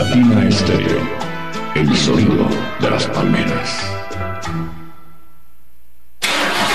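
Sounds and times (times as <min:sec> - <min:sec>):
speech: 0:00.2 - 0:04.8
diesel engine starting: 0:06.2 - 0:06.7.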